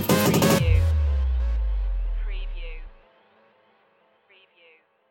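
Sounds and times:
night drive music stinger: 0:00.2 - 0:03.0.

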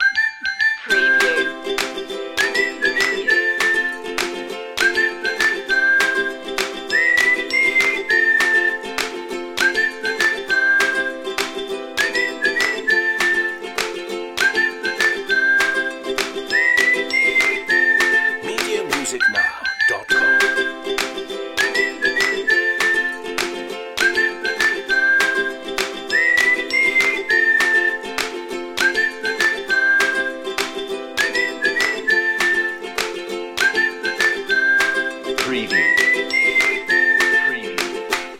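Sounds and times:
upbeat ukulele loop: 0:00.0 - 0:38.3.

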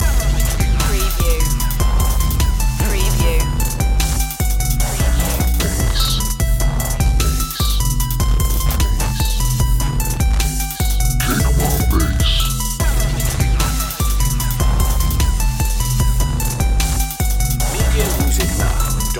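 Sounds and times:
kick drum and bass loop: 0:00.0 - 0:19.1.

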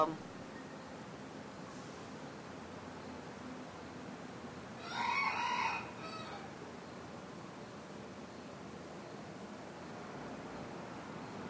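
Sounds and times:
speech: 0:00.0 - 0:00.3
hissy background: 0:00.0 - 0:11.4
rooster crowing a drawn-out muffled morning crow: 0:04.8 - 0:06.5.

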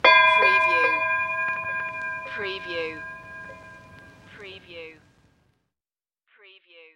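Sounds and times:
classic vintage ship bell ringing: 0:00.0 - 0:04.4.

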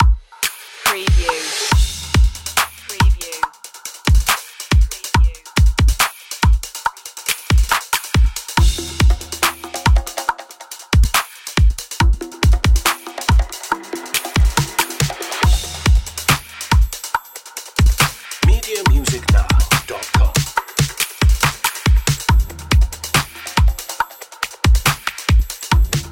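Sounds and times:
hip hop urban drums: 0:00.0 - 0:26.1.

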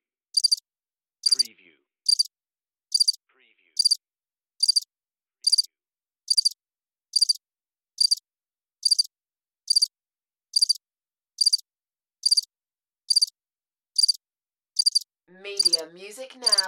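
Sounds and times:
cricket chirping with high-pitched pulsed chirps: 0:00.4 - 0:00.6, 0:01.2 - 0:01.4, 0:02.1 - 0:02.3, 0:02.9 - 0:03.2, 0:03.8 - 0:04.0, 0:04.6 - 0:04.8, 0:05.4 - 0:05.7, 0:06.3 - 0:06.6, 0:07.2 - 0:07.4, 0:08.0 - 0:08.2, 0:08.8 - 0:09.1, 0:09.7 - 0:09.9, 0:10.5 - 0:10.8, 0:11.4 - 0:11.6, 0:12.2 - 0:12.5, 0:13.1 - 0:13.3, 0:14.0 - 0:14.2, 0:14.8 - 0:15.0, 0:15.6 - 0:15.8, 0:16.4 - 0:16.6
speech: 0:15.4 - 0:16.6.

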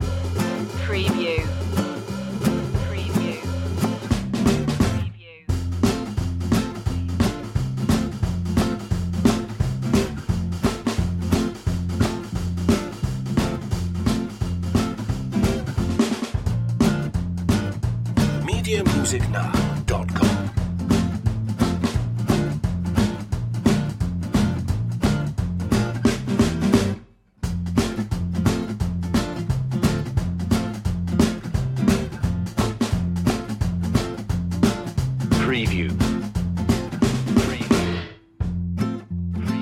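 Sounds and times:
bass: 0:00.0 - 0:39.6
drums: 0:00.0 - 0:39.6
guitar: 0:00.0 - 0:39.6.

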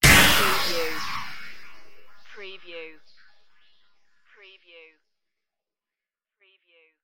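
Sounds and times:
futuristic weapon strike: 0:00.0 - 0:03.3.

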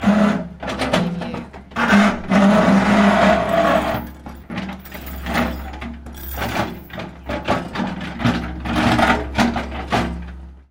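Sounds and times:
metal scraping on concrete: 0:00.0 - 0:09.9
stressed metal rattling: 0:03.5 - 0:07.9.

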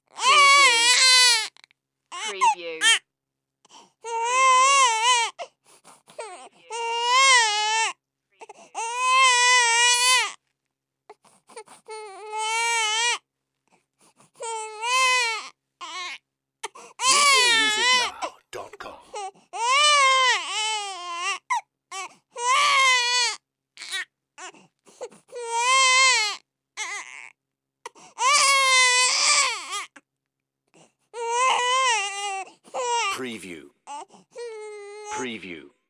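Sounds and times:
baby crying: 0:00.1 - 0:03.0, 0:04.0 - 0:05.5, 0:06.2 - 0:10.4, 0:11.6 - 0:13.2, 0:14.4 - 0:24.6, 0:25.3 - 0:27.3, 0:28.2 - 0:30.0, 0:31.2 - 0:33.2, 0:33.9 - 0:35.2.

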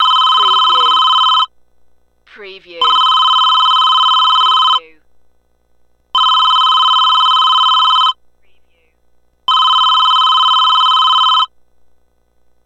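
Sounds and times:
telephone ringing: 0:00.0 - 0:01.5, 0:02.8 - 0:04.8, 0:06.2 - 0:08.2, 0:09.5 - 0:11.5.

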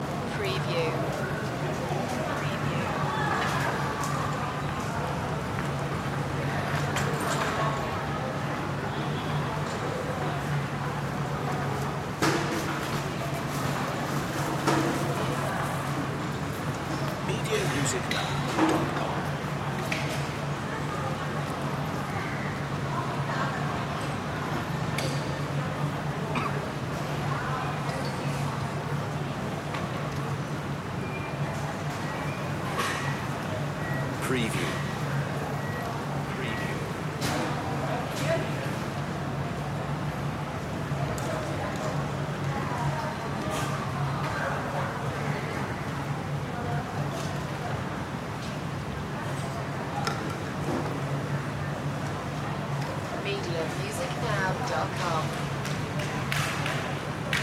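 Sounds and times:
backyard shopping street ambience: 0:00.0 - 0:57.4.

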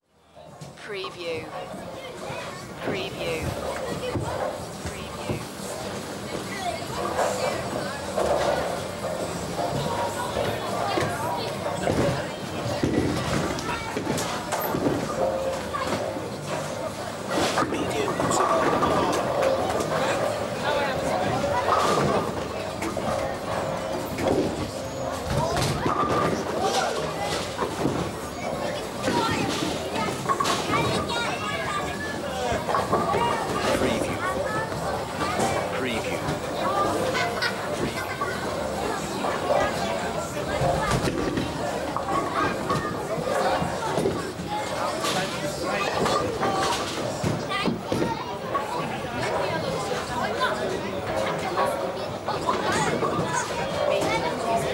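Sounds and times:
very busy crowd in a bowling hall: 0:00.0 - 0:54.7.

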